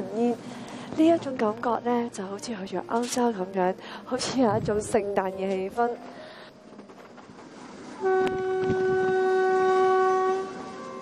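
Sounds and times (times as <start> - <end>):
train running through snow at around minus thirty degrees: 0.0 - 11.0
speech: 0.1 - 6.2
train horn blast: 7.8 - 11.0.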